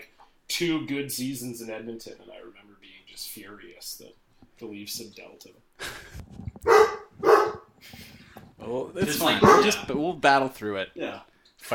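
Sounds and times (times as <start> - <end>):
speech: 0.6 - 6.5, 8.6 - 11.7
dog barking: 6.7 - 7.7, 9.2 - 9.8.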